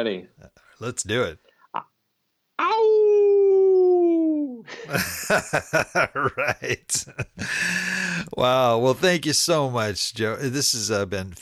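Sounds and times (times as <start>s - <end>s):
speech: 0.0s - 1.9s, 4.7s - 11.3s
person imitating a hound dog howl: 2.6s - 4.6s
short breathy bursts like laughter: 4.6s - 8.3s.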